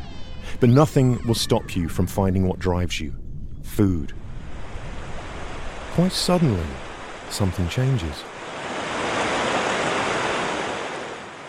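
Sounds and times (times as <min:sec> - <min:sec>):
speech: 0:00.6 - 0:03.2, 0:03.8 - 0:04.2, 0:06.0 - 0:08.3
surf of breaking waves at the mouth of the Columbia River into the Pacific Ocean: 0:04.2 - 0:11.4.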